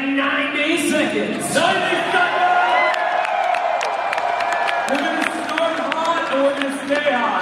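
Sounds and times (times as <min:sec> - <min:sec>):
speech: 0:00.2 - 0:02.5
large indoor crowd cheering before a wrestling show: 0:01.3 - 0:07.3
whoops: 0:02.4 - 0:05.1
sharp claps: 0:02.9 - 0:07.3.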